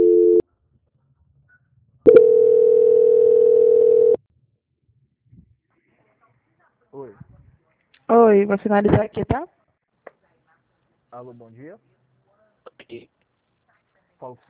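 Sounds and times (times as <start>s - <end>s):
telephone line tones during call transfer: 0.0s - 0.4s, 2.1s - 4.2s
speech: 8.2s - 9.6s, 11.1s - 11.9s, 12.9s - 13.2s, 14.2s - 14.4s.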